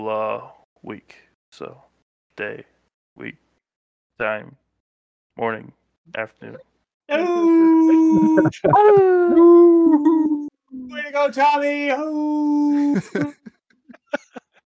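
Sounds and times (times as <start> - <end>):
speech: 0.0 - 3.4, 4.2 - 4.6, 5.4 - 13.4
person cheering: 7.1 - 13.4
dog howling long drawn-out howls: 7.2 - 10.5
laughter: 7.8 - 9.5, 12.7 - 14.6.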